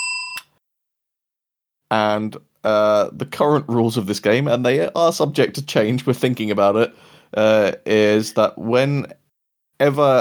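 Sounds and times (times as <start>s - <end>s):
small bell rung as part of a game: 0.0s - 0.4s
speech: 1.9s - 9.2s, 9.8s - 10.2s.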